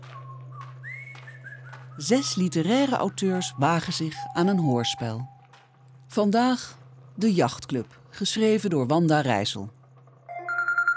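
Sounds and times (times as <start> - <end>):
whistled jingle melody: 0.0 - 5.4
steady low electrical hum: 0.1 - 10.3
speech: 2.0 - 5.4, 6.1 - 9.8.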